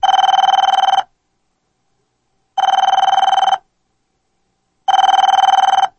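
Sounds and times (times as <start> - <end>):
phone ringing: 0.0 - 1.1, 2.6 - 3.6, 4.9 - 5.9.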